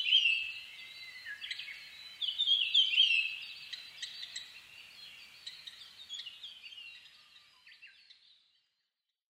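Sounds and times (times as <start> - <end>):
Japanese grosbeak whistled calls: 0.0 - 8.5.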